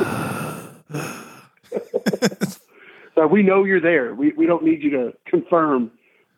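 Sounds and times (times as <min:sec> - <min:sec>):
short throaty voiced bursts: 0:00.0 - 0:01.4
heavy breathing into a microphone: 0:00.0 - 0:01.6, 0:02.4 - 0:03.2
laughter: 0:01.6 - 0:02.6
speech: 0:03.2 - 0:06.3.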